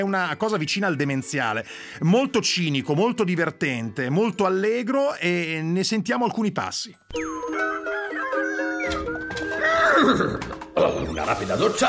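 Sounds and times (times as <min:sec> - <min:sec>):
speech: 0:00.0 - 0:07.7, 0:10.0 - 0:11.8
horse neighing: 0:08.4 - 0:11.2.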